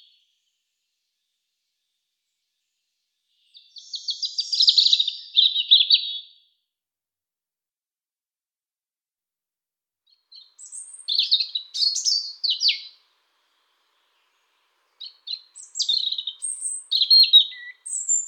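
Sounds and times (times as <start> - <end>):
European robin singing: 3.3 - 6.3, 10.1 - 18.2.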